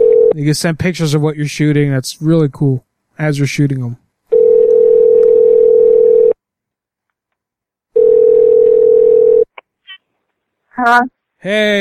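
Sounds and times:
telephone tones while a call is being placed: 0:00.0 - 0:00.4, 0:04.3 - 0:06.4, 0:08.0 - 0:09.5
speech: 0:00.4 - 0:04.0, 0:10.8 - 0:11.7.

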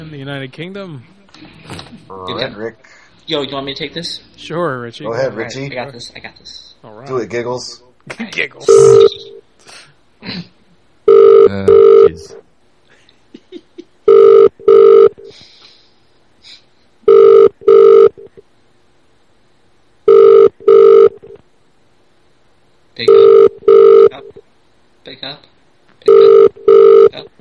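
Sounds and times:
speech: 0:00.1 - 0:10.6, 0:11.4 - 0:12.5, 0:23.0 - 0:24.3, 0:25.0 - 0:27.3
outgoing telephone call ringback double rings: 0:11.1 - 0:12.1, 0:14.1 - 0:15.2, 0:17.1 - 0:18.3, 0:20.1 - 0:21.2, 0:23.1 - 0:24.1, 0:26.1 - 0:27.1
laughter: 0:12.9 - 0:13.9.

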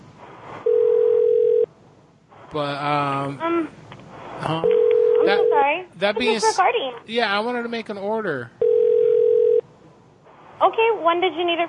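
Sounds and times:
dial tone on a phone line: 0:00.7 - 0:01.7, 0:04.7 - 0:05.6, 0:08.6 - 0:09.6
speech: 0:02.5 - 0:03.8, 0:04.4 - 0:08.6, 0:10.6 - 0:11.6.

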